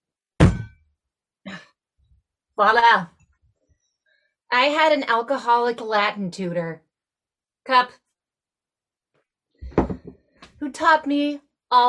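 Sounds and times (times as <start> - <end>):
spigot banged into a wooden cask's bung: 0.4 - 0.8
speech: 2.6 - 3.2, 4.5 - 6.8, 7.6 - 8.0, 10.6 - 11.8.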